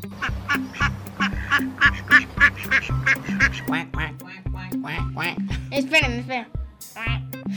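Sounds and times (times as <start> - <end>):
duck quacking: 0.0 - 5.4, 7.0 - 7.4.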